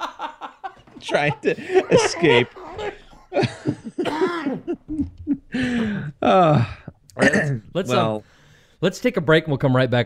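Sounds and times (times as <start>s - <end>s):
laughter: 0.0s - 6.1s
speech: 1.0s - 4.2s, 5.6s - 10.0s
person coughing harshly: 1.8s - 5.1s, 7.2s - 7.6s.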